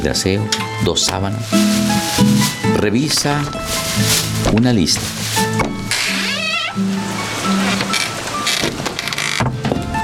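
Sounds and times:
speech: 0.0s - 5.7s
door hinge squeak: 5.6s - 6.9s, 7.5s - 9.7s
door creaking open with hinge squeak: 5.6s - 10.0s.

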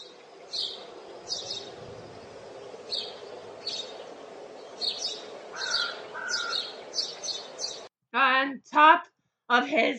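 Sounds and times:
bird chirping: 0.0s - 7.9s
faint hiss: 0.0s - 7.9s
speech: 9.7s - 9.9s.

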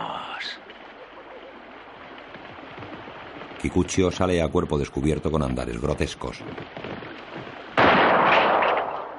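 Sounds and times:
speech: 3.6s - 6.8s
single gunshot from a rider's firearm near a wooden palisade: 7.7s - 9.1s.

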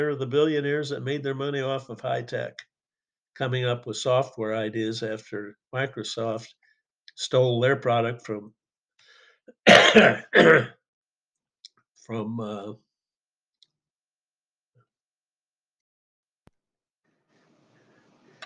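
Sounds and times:
speech: 0.0s - 2.7s, 3.4s - 6.6s, 7.2s - 8.6s, 9.6s - 10.8s, 12.1s - 12.8s
harsh coughing fit: 9.6s - 10.7s.

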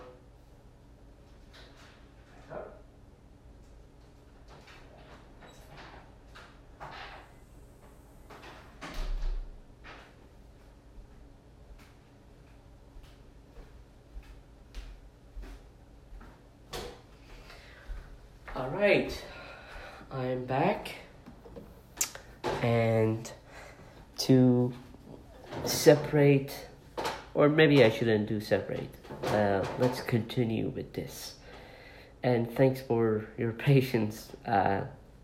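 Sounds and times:
door opening and closing: 4.5s - 10.1s
speech: 18.7s - 19.3s, 20.1s - 21.0s, 22.6s - 23.3s, 24.3s - 24.8s, 25.7s - 26.7s, 27.3s - 31.4s, 32.2s - 35.0s.

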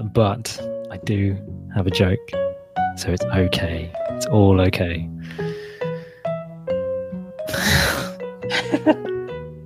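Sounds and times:
speech: 0.1s - 5.4s, 8.8s - 9.1s
person clearing throat: 7.5s - 8.2s.

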